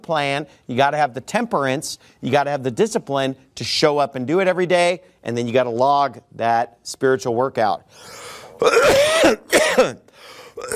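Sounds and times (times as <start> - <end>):
speech: 0.0 - 10.0
person clearing throat: 8.5 - 10.7
person coughing: 8.5 - 10.7.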